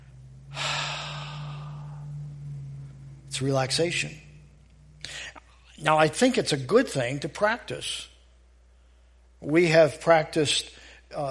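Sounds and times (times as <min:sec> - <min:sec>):
constant low hum: 0:00.0 - 0:11.3
long steady breath out during a deep centered breathing exercise: 0:00.5 - 0:02.3
speech: 0:03.4 - 0:04.2, 0:05.8 - 0:08.1, 0:09.4 - 0:11.3.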